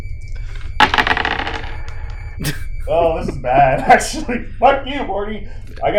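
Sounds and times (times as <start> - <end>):
three dice clattering across a surface: 0.8 - 1.7
laughter: 2.4 - 4.8
speech: 2.4 - 5.9.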